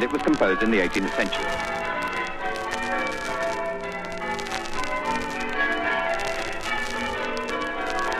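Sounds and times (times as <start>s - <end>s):
speech: 0.0s - 1.8s
church bells ringing the changes: 0.0s - 8.1s.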